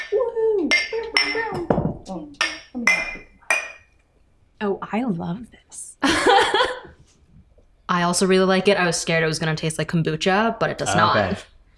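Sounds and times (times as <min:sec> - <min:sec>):
glasses clinking in a toast over homemade fermented pop: 0:00.0 - 0:04.0
speech: 0:04.6 - 0:06.7, 0:08.1 - 0:11.7.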